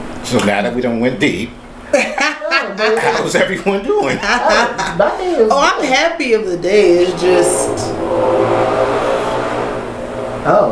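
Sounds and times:
speech: 0:00.2 - 0:08.6, 0:10.4 - 0:10.7
laughter: 0:01.9 - 0:06.1
car engine revving outside: 0:04.2 - 0:10.7.

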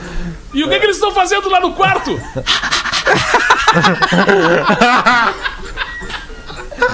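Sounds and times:
speech: 0:00.5 - 0:05.7
laughter: 0:01.8 - 0:06.9
person imitating dog with loud rapid panting breaths: 0:02.4 - 0:03.2.

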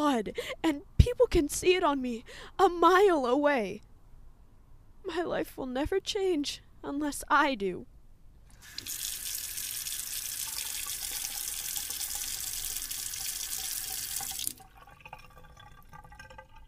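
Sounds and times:
speech: 0:00.0 - 0:03.9, 0:05.0 - 0:07.9
tap water running into a sink during sink scrubbing: 0:08.6 - 0:16.6.

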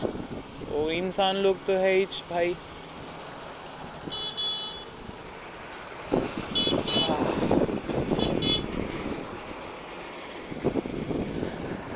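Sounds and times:
rumbling traffic noise with vehicles passing: 0:00.0 - 0:11.9
speech: 0:00.8 - 0:02.8
short high horn toots: 0:06.6 - 0:07.2, 0:08.2 - 0:08.7.

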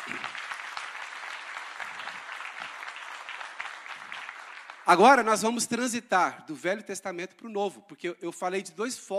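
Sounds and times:
crowd at a sermon applauding: 0:00.0 - 0:05.4
speech: 0:04.9 - 0:09.1.

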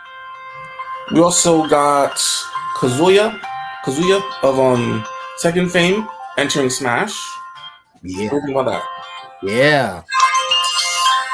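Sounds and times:
phone ringtone: 0:00.0 - 0:11.3
speech: 0:01.1 - 0:07.4, 0:08.0 - 0:10.2.

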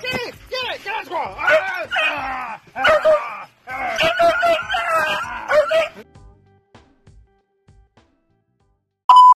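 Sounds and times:
dog barking and yipping at squirrels: 0:01.4 - 0:02.2, 0:02.8 - 0:03.2, 0:03.9 - 0:06.0
short electronic beep: 0:09.1 - 0:09.3.

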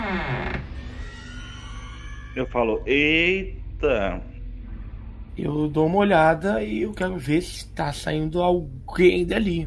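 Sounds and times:
door creaking open: 0:00.0 - 0:03.0
speech: 0:02.4 - 0:04.3, 0:05.4 - 0:09.6
low steady hum: 0:02.5 - 0:09.6.

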